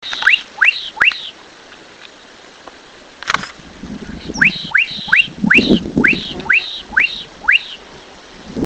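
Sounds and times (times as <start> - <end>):
bird whistling sharp rising notes: 0.1 - 1.4, 4.3 - 7.8.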